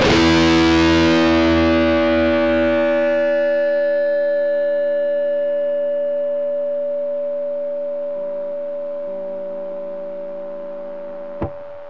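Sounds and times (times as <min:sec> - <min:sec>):
guitar drone into feedback: 0:00.0 - 0:11.8.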